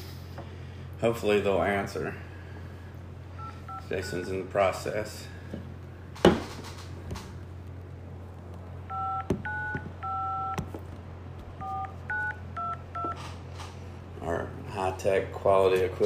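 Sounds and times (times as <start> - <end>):
low steady hum: 0.0 - 16.0
speech: 1.0 - 2.3, 3.9 - 5.7, 15.4 - 16.0
telephone keypad dialing tones as a phone number is dialed: 8.9 - 10.7, 11.6 - 13.2.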